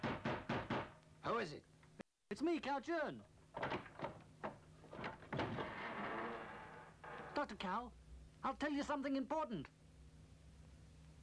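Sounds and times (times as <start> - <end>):
wooden door clunks and rattles: 0.0 - 1.0, 3.5 - 5.9
speech: 1.3 - 1.7, 2.3 - 3.8, 7.4 - 9.8.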